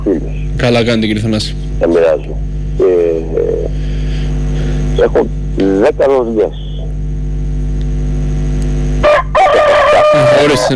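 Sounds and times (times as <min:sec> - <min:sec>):
low steady hum: 0:00.0 - 0:10.7
speech: 0:00.2 - 0:03.0, 0:05.0 - 0:06.6, 0:10.2 - 0:10.7
rooster crowing: 0:09.0 - 0:10.7.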